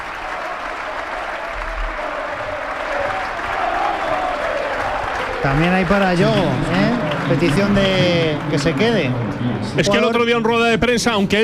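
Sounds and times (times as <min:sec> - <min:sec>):
stadium crowd applauding substitutions: 0:00.0 - 0:10.4
speech: 0:05.4 - 0:11.4.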